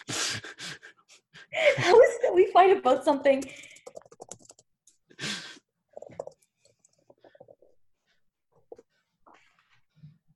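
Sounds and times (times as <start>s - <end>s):
speech: 1.6s - 3.6s
typing on a computer keyboard: 3.4s - 5.0s.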